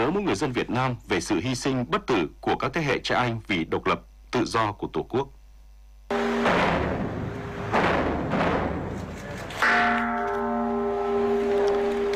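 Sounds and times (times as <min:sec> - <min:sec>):
speech: 0:00.1 - 0:05.4
temple bell tolling at a Buddhist memorial ceremony in Vietnam: 0:06.1 - 0:12.1.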